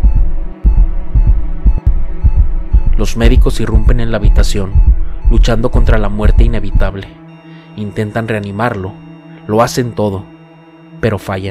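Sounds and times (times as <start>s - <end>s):
erratic heartbeat thudding in low heavy pulses: 0.0s - 7.0s
steady droning hum: 0.0s - 11.1s
speech: 3.0s - 7.2s, 7.8s - 10.3s, 11.0s - 11.4s.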